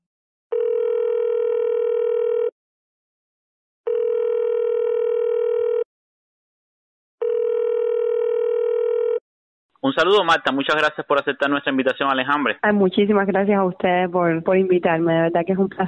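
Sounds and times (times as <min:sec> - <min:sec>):
buzzy telephone line tones while placing a call: 0:00.5 - 0:02.5, 0:03.9 - 0:05.9, 0:07.2 - 0:09.2
speech: 0:09.9 - 0:15.8.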